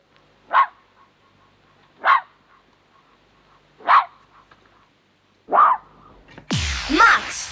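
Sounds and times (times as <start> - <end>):
roe deer alarm barks: 0.5 - 1.4, 2.0 - 2.7, 3.8 - 4.5, 5.5 - 5.9.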